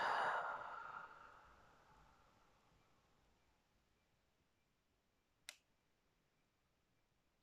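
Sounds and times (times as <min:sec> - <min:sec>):
soft breath out during guided meditation: 0:00.0 - 0:02.1
small click: 0:05.4 - 0:05.7.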